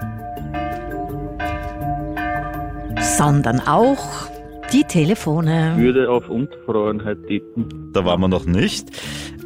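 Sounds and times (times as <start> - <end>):
church bells ringing: 0.0 - 6.7
speech: 3.1 - 9.4.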